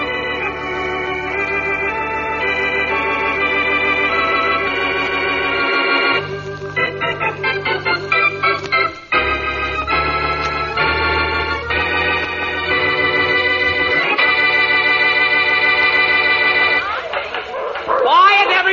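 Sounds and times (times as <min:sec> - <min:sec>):
droning musical passage: 0:00.0 - 0:16.8
several dogs barking and yipping together: 0:17.3 - 0:18.6.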